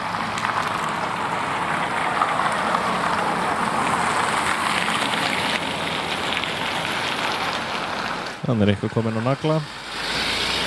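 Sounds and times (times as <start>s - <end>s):
street traffic with tyres on wet pavement: 0.0s - 10.6s
speech: 8.5s - 10.0s.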